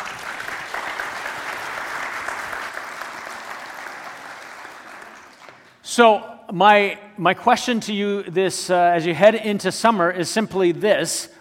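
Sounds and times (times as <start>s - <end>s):
audience applause: 0.0s - 5.7s
speech: 6.0s - 11.3s.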